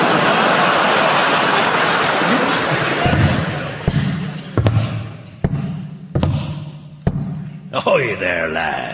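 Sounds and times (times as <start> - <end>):
laughter: 0.0 - 5.2
wooden leg footsteps thumping on a hard floor: 3.0 - 7.5
speech: 8.1 - 8.9.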